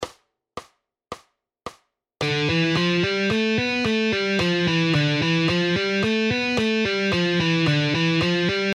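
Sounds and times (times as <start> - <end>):
guitar speed exercises: 2.2 - 8.7.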